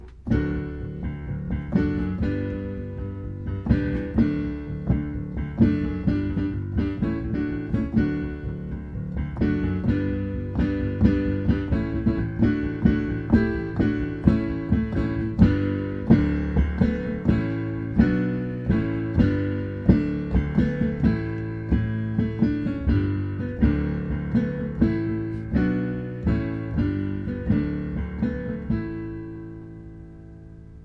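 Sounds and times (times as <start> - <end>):
rocking octaves with simpler chords: 0.0 - 30.2.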